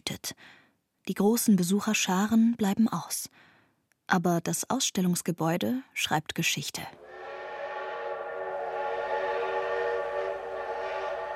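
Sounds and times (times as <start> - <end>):
speech: 0.2 - 3.5, 4.1 - 7.0
steam train whistle blowing: 7.0 - 11.3.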